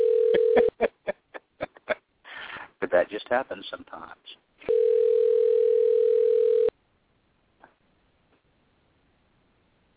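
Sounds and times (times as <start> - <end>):
electronic ringback tone on an outgoing phone call: 0.0 - 0.8, 4.7 - 6.7
speech: 2.9 - 4.4.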